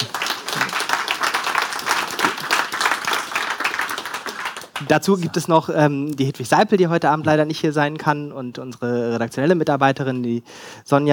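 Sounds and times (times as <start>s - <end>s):
audience applauding: 0.0s - 5.3s
speech: 4.8s - 11.1s.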